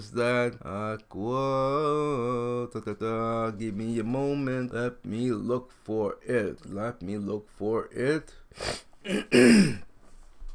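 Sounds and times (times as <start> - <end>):
speech: 0.0 - 9.9
person clearing throat: 9.0 - 9.9.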